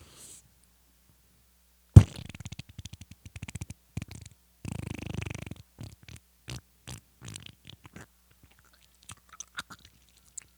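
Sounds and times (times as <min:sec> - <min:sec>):
person imitating a fart with their mouth: 0:02.0 - 0:08.6.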